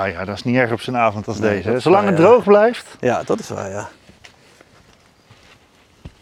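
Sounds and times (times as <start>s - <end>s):
speech: 0.0s - 4.0s
footsteps crunching outdoors at a walking pace: 2.0s - 6.2s.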